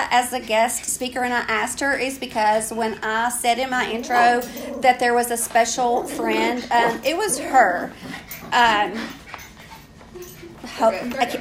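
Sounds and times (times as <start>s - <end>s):
speech: 0.1s - 9.2s, 10.8s - 11.3s
dog whimpering and whining: 3.8s - 8.0s.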